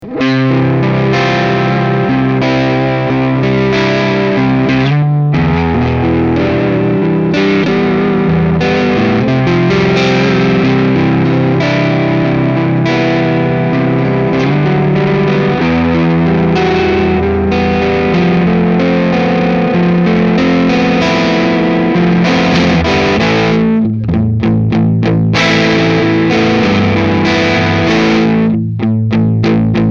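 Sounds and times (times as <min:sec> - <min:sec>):
overdrive sound: 0:00.0 - 0:29.9.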